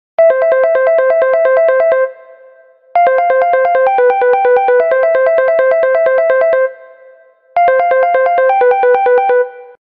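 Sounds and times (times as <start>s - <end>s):
Infinix S5 Pro phone ringtone: 0.2s - 9.8s.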